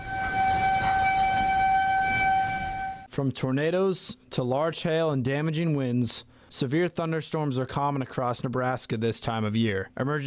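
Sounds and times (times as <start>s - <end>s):
outdoor severe-weather warning siren in Norfolk Nebraska: 0.0s - 3.1s
speech: 3.2s - 10.2s.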